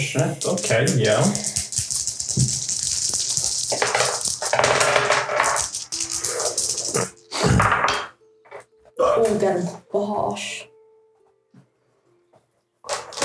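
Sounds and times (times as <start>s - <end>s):
speech: 0.0s - 1.5s, 9.4s - 10.7s
dice clattering and tumbling across a hard tabletop: 0.4s - 8.0s, 12.9s - 13.2s.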